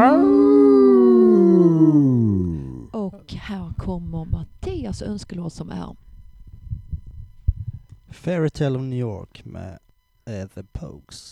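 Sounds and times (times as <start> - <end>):
people howling like wolves to mark the end of the term: 0.0 - 2.9
speech: 3.5 - 6.1, 8.1 - 11.3.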